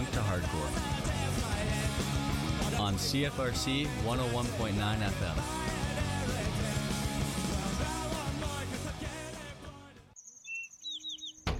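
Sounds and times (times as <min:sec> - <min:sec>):
loud music: 0:00.0 - 0:10.0
speech: 0:00.3 - 0:01.0, 0:02.8 - 0:05.7
short bright bird chirps: 0:10.2 - 0:11.5.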